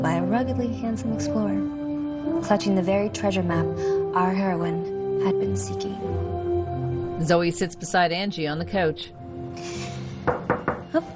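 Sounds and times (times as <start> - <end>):
speech: 0.3 - 6.4, 7.2 - 9.9, 10.9 - 11.1
firm knocks on a door: 10.2 - 11.0.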